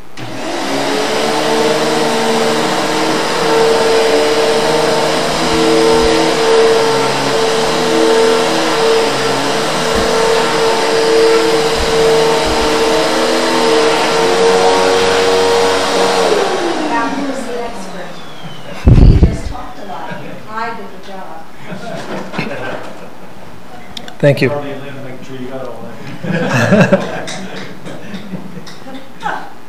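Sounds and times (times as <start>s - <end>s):
vacuum cleaner running: 0.0s - 22.8s
laughter: 18.4s - 18.9s, 19.9s - 20.5s, 21.6s - 23.5s, 26.0s - 28.8s
speech: 24.2s - 24.8s, 26.7s - 27.1s.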